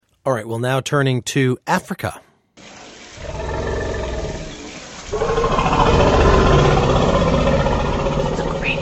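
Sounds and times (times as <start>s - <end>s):
speech: 0.2s - 2.3s
elephant giving a deep rumbling roar: 3.2s - 8.8s.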